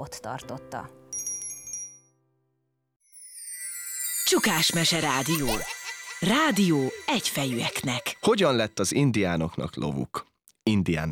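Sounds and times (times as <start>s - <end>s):
speech: 0.0s - 1.3s, 4.3s - 11.1s
small bell ringing: 1.1s - 2.2s, 3.0s - 8.8s
bright shimmering high rustle: 3.1s - 9.2s.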